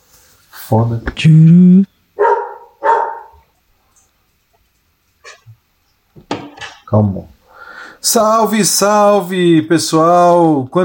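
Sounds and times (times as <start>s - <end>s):
speech: 0.7s - 1.9s, 6.9s - 7.4s, 8.0s - 10.8s
dog barking: 2.2s - 3.5s.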